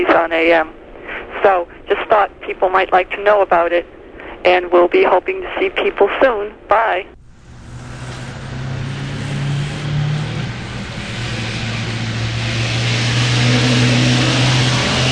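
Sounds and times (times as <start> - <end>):
speech: 0.0 - 0.8, 1.4 - 7.2
big logging truck engine droning past: 7.2 - 15.1
road and tire noise: 7.2 - 15.1.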